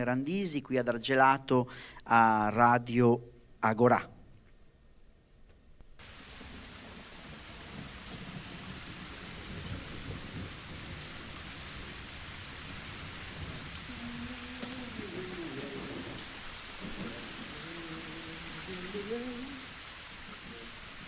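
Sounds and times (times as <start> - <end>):
speech: 0.0 - 4.2
steady dense rain falling: 6.0 - 21.0.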